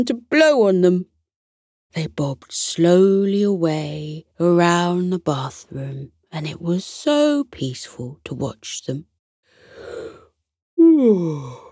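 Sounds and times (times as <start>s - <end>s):
speech: 0.0s - 1.1s, 1.9s - 9.1s, 11.0s - 11.6s
breathy inhale: 9.5s - 10.4s
person yawning: 10.8s - 11.7s.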